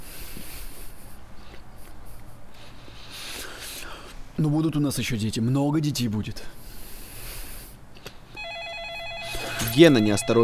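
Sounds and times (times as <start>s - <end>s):
speech: 4.4s - 6.6s, 9.8s - 10.4s
warbling electronic telephone ring in a home hallway: 8.4s - 10.4s.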